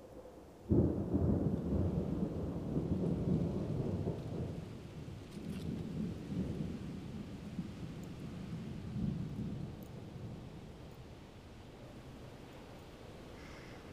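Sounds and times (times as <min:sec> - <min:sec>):
steady rain: 0:00.3 - 0:13.9
thunder rumbling: 0:00.7 - 0:11.1.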